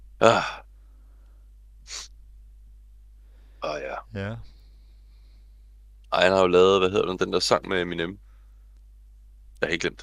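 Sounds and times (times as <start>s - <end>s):
quiet hum: 0.0s - 10.0s
speech: 0.2s - 0.6s, 4.2s - 4.5s, 6.2s - 8.3s, 9.6s - 10.0s
person sneezing into the microphone: 1.9s - 2.1s.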